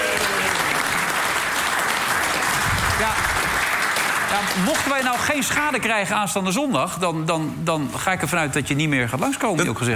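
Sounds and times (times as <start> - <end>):
dense applause: 0.0 - 5.9
speech: 3.0 - 3.3, 4.3 - 9.9.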